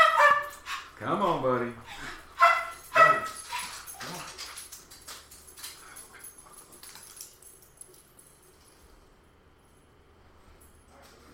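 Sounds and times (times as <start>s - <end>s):
dog barking excitedly: 0.0s - 0.6s, 2.4s - 3.6s
speech: 1.0s - 2.1s.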